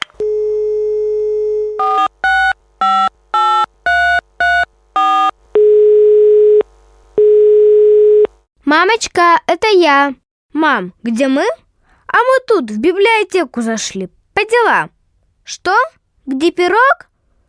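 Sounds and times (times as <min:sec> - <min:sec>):
long even telephone ringing tones: 0:00.2 - 0:08.4
speech: 0:08.8 - 0:17.1.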